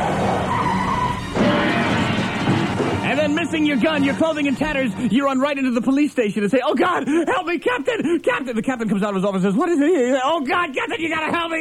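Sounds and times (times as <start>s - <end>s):
roaring car engine: 0.0s - 3.0s
car tire squealing while skidding out of control: 0.0s - 5.0s
speech: 3.3s - 11.5s.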